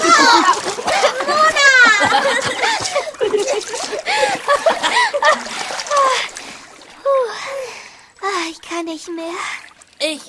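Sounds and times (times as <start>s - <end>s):
excited childlike voices laughing and shouting: 0.0s - 6.4s
water splashing as people play: 0.0s - 10.2s
speech: 8.9s - 10.2s.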